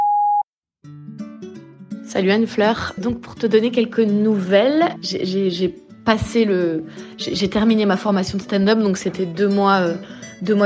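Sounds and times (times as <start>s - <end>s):
high pitched electronic voicemail beep: 0.0s - 0.5s
speech: 2.1s - 10.6s.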